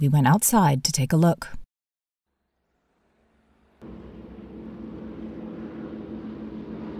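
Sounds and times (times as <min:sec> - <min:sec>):
speech: 0:00.0 - 0:01.6
twin-engine B-18 bomber planes droning overhead: 0:03.8 - 0:06.9.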